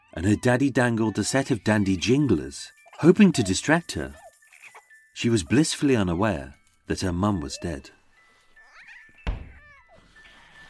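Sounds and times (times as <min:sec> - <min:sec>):
speech: 0:00.2 - 0:04.2, 0:05.2 - 0:08.0
dull heavy thump: 0:09.2 - 0:09.6.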